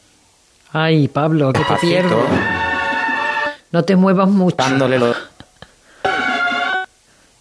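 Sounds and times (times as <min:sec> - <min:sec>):
speech: 0:00.7 - 0:02.6, 0:03.7 - 0:05.2
mobile phone ringtone: 0:01.6 - 0:03.6, 0:06.0 - 0:06.9.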